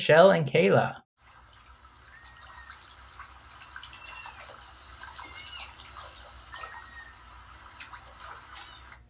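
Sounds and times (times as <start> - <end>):
soft watery splashing: 1.2 - 9.0
sea otter squealing: 2.1 - 2.8, 3.9 - 7.3, 8.4 - 9.0.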